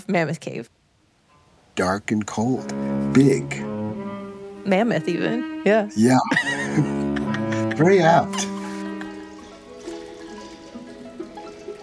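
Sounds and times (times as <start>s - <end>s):
speech: 0.0s - 0.8s, 1.8s - 3.7s, 4.6s - 7.0s, 7.8s - 8.6s
laughter: 6.0s - 9.6s
water pouring into an aquarium tank: 9.2s - 11.8s.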